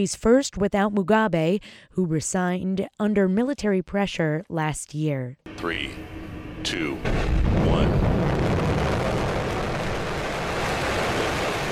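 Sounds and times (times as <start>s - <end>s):
speech: 0.0s - 8.0s
Falcon 9 rocket lifting off from Vandenberg Air Force Base in California: 5.5s - 11.7s.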